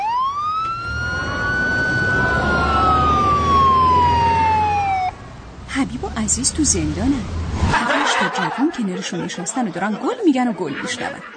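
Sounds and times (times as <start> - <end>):
police car siren wailing as the vehicle passes: 0.0 - 5.5
police car low engine rumble: 0.3 - 7.8
laughter: 1.2 - 4.6, 7.8 - 11.3
speech: 6.4 - 11.3.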